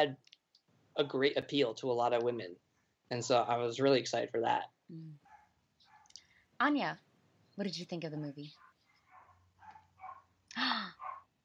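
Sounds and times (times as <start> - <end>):
speech: 0.0 - 0.3, 1.0 - 5.2, 6.6 - 7.0, 7.6 - 8.6
dogs barking with short woofs: 5.2 - 6.2, 8.6 - 10.4, 11.0 - 11.3.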